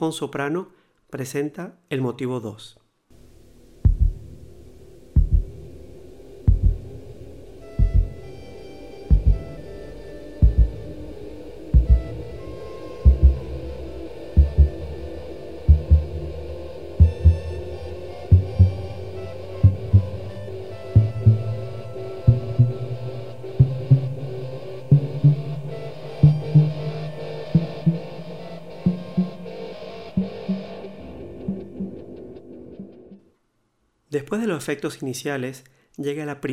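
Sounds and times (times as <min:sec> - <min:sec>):
speech: 0:00.0 - 0:02.8, 0:34.3 - 0:36.5
faint musical tones: 0:03.2 - 0:33.2
sustained low musical drone: 0:03.2 - 0:33.2
slow deep heartbeat sound effect thumping in double pulses: 0:03.8 - 0:08.4, 0:09.1 - 0:09.7, 0:10.4 - 0:11.0, 0:11.8 - 0:12.4, 0:13.1 - 0:15.0, 0:15.6 - 0:20.4, 0:21.0 - 0:28.2.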